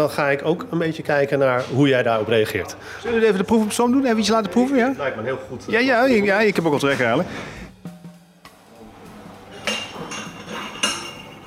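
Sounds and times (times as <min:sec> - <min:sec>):
speech: 0:00.0 - 0:07.6
soft busy background: 0:00.0 - 0:11.4
thin-stemmed wine glass set down on a table for a wine tasting: 0:09.6 - 0:11.4.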